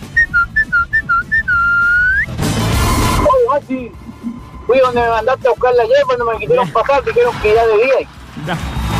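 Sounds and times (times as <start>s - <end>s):
person whistling loudly as a signal: 0.1s - 3.3s
speech: 4.9s - 8.8s.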